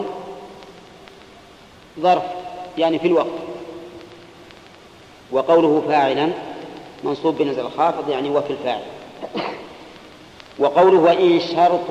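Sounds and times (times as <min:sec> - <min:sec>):
faint hiss: 0:00.0 - 0:11.8
speech: 0:02.0 - 0:03.5, 0:05.3 - 0:09.7, 0:10.6 - 0:11.8
sneeze: 0:09.2 - 0:09.7.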